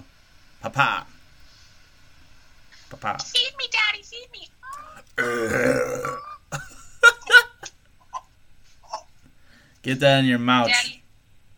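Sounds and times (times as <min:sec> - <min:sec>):
speech: 0:00.7 - 0:01.1, 0:03.0 - 0:06.7, 0:09.8 - 0:11.0
man burping loudly: 0:04.8 - 0:06.8.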